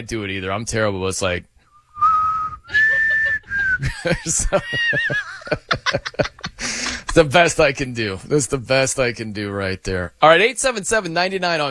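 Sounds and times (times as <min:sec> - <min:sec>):
speech: 0:00.0 - 0:01.5, 0:03.8 - 0:11.7
person whistling a short shaky off-key tune: 0:01.7 - 0:03.9
snickering chuckles and laughter: 0:02.6 - 0:07.2.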